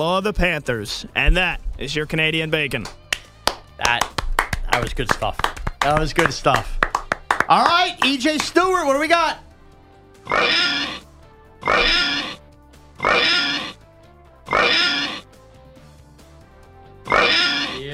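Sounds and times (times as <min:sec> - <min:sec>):
speech: 0:00.0 - 0:03.0, 0:03.8 - 0:04.1, 0:04.8 - 0:06.8, 0:07.5 - 0:09.4, 0:10.2 - 0:11.0, 0:11.6 - 0:12.3
pig oinks: 0:10.2 - 0:12.4, 0:13.0 - 0:13.8, 0:14.5 - 0:15.3, 0:17.1 - 0:17.8
warbling voice: 0:11.6 - 0:12.4, 0:13.0 - 0:13.8, 0:14.5 - 0:15.2.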